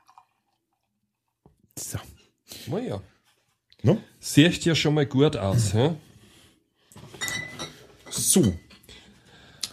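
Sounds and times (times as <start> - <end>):
blonde wheat beer poured from a bottle into a glass: 0.0 - 1.2
speech: 2.7 - 3.2, 3.8 - 6.1, 8.4 - 8.6
glass clinking against glass: 7.2 - 8.7.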